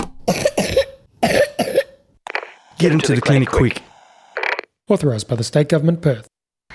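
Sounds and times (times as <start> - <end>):
girl with a lingering lung illness coughing wetly: 0.3 - 2.0
speech: 2.8 - 3.9, 4.9 - 6.3.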